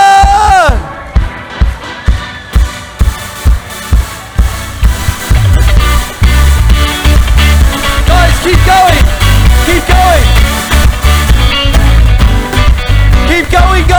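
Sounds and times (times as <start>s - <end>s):
crowd cheering: 0.0s - 13.9s
crowd clapping in a steady rhythmic beat: 2.6s - 13.9s.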